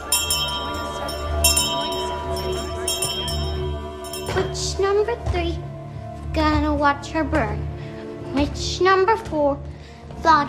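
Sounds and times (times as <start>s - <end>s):
hand bell rung at the front door of an old church house: 0.0s - 4.7s
speech: 4.6s - 5.7s, 6.3s - 10.4s.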